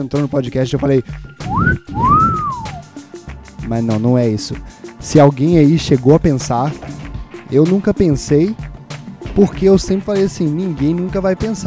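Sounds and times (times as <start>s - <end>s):
speech: 0.0s - 2.8s, 3.7s - 8.7s, 9.4s - 11.6s
person whistling two notes: 1.4s - 3.0s.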